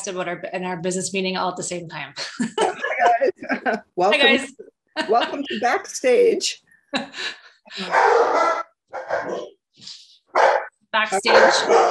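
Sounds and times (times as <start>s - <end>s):
speech: 0.0s - 11.8s
laughter: 2.2s - 6.0s
dog barking: 7.8s - 9.6s, 10.3s - 11.8s.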